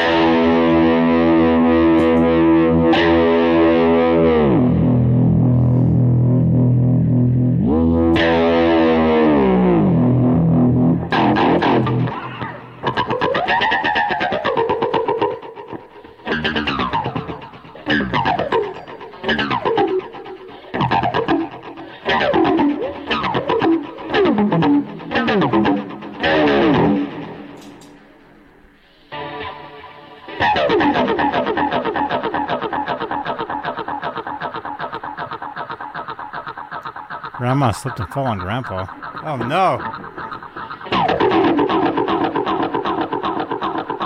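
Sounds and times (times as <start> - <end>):
distorted electric guitar through a pitch-shifting pedal: 0.0 - 44.0
speech: 37.6 - 40.0.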